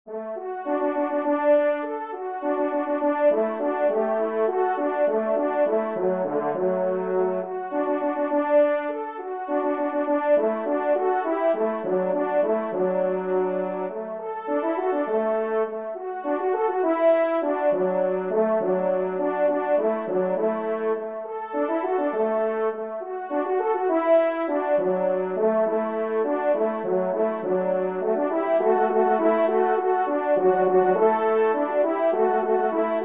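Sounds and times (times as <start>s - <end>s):
waltz in C major: 0.8s - 33.0s.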